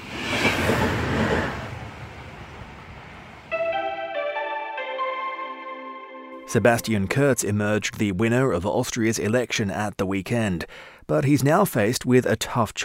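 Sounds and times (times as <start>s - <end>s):
passenger train rumbling past on rails: 0.0s - 4.4s
speech: 6.5s - 12.8s.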